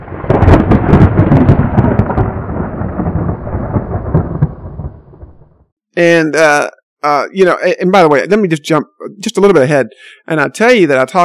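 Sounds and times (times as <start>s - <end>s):
thunder rumbling and crackling: 0.0s - 5.7s
speech: 6.0s - 11.2s.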